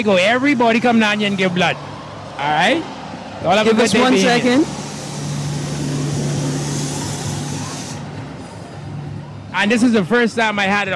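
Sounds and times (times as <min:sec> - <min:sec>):
speech: 0:00.0 - 0:04.8, 0:09.6 - 0:10.9
sanitation truck passing by: 0:01.3 - 0:09.5.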